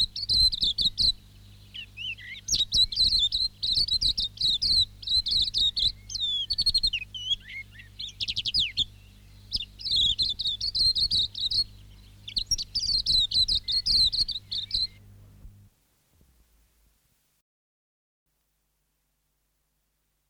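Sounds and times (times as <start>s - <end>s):
silvereye twittering: 0.0s - 15.1s.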